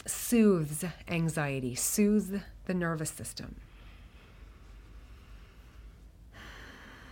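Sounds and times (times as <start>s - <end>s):
speech: 0.3s - 3.7s
deep slow breath in and out: 3.6s - 7.1s.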